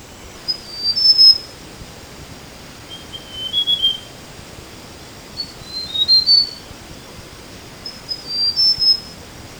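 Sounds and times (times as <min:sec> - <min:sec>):
mountain tailorbird singing high thin whistled phrases: 0:00.0 - 0:09.5.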